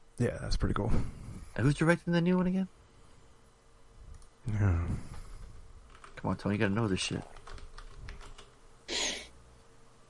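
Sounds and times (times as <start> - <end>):
speech: 0.2 - 2.8, 4.4 - 5.1, 6.2 - 7.5
typing on a computer keyboard: 5.9 - 6.2, 7.2 - 8.6.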